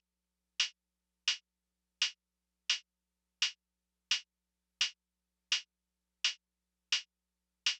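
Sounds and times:
diffuse lo-fi drum loop with hi-hat: 0:00.6 - 0:01.4, 0:02.0 - 0:02.8, 0:03.4 - 0:07.1.

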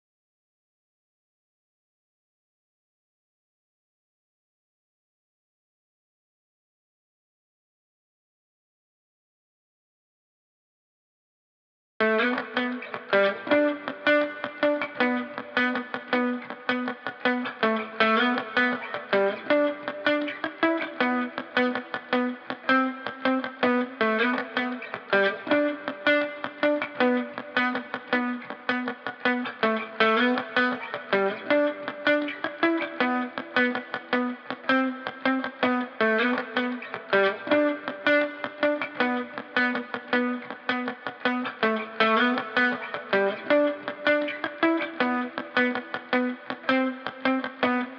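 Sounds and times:
muted guitar loop in E minor at 80 BPM: 0:12.0 - 0:47.9.

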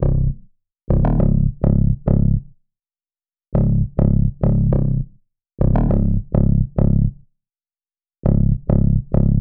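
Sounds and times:
West Coast bass melody loop in C minor: 0:00.0 - 0:02.5, 0:03.6 - 0:07.2, 0:08.2 - 0:09.3.

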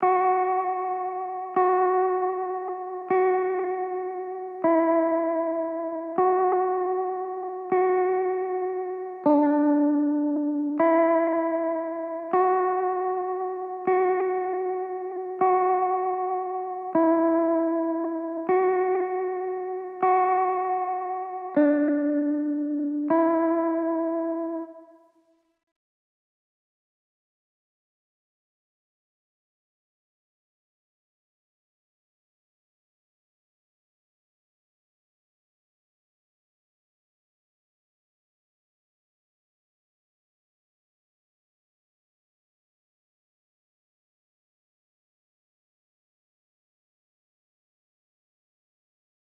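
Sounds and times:
guitar melody in D major: 0:00.0 - 0:25.2.

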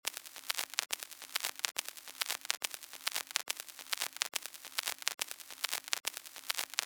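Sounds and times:
lo-fi hip hop vinyl crackle loop at 70 BPM: 0:00.0 - 0:06.8.

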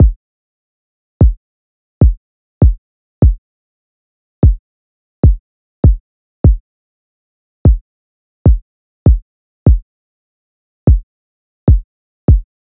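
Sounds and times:
149 BPM kick drum loop: 0:01.2 - 0:01.4, 0:02.0 - 0:03.4, 0:05.2 - 0:06.6, 0:07.6 - 0:07.8, 0:08.5 - 0:09.8, 0:11.7 - 0:12.5.

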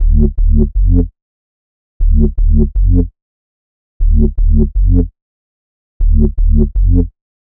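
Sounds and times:
deep house bass loop in D: 0:00.0 - 0:01.1, 0:02.0 - 0:03.1, 0:04.0 - 0:05.1, 0:06.0 - 0:07.1.

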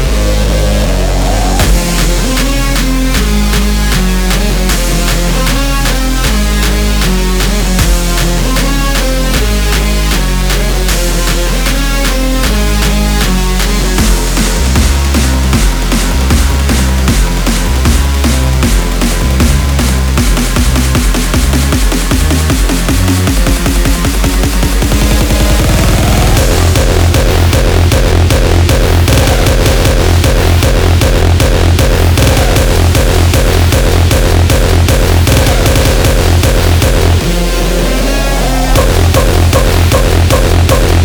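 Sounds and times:
drum kit mix in F minor: 0:00.1 - 0:41.0.

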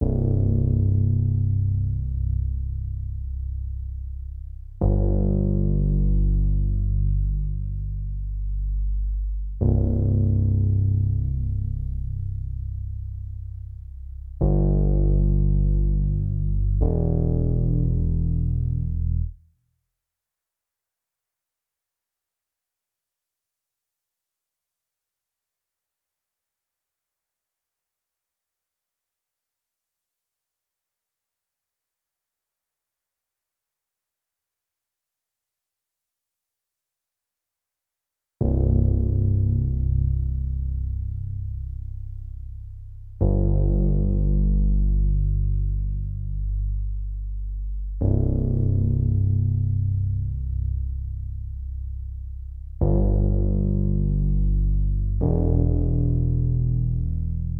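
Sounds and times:
100 BPM ambient bass melody loop in E minor: 0:00.0 - 0:19.4, 0:38.4 - 0:57.5.

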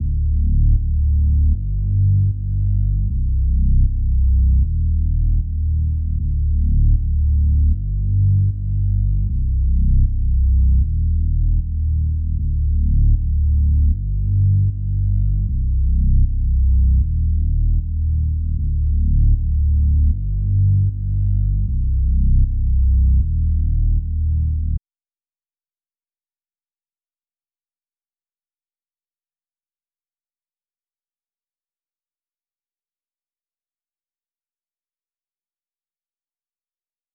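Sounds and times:
155 BPM G minor bass: 0:00.0 - 0:24.8.

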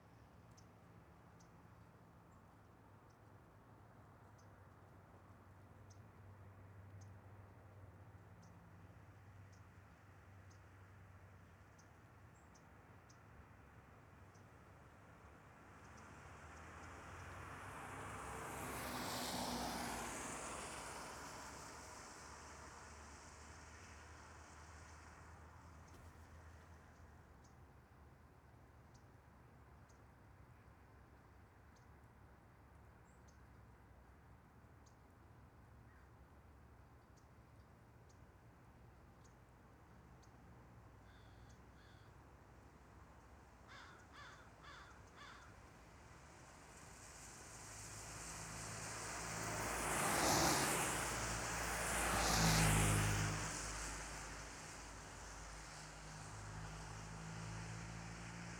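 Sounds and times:
cars passing by on a wet road: 0:16.4 - 0:25.8, 0:46.4 - 0:58.5
light rain: 0:46.8 - 0:57.6.

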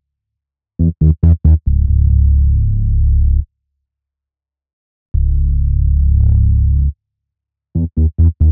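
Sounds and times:
bass loop in C sharp minor: 0:00.8 - 0:03.4, 0:05.1 - 0:06.9, 0:07.8 - 0:08.5.

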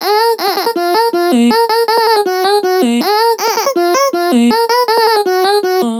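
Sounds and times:
vocal loop in D sharp: 0:00.0 - 0:05.9.

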